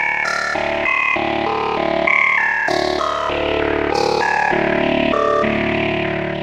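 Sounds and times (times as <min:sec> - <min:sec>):
synthesizer harmonics: 0:00.2 - 0:06.3.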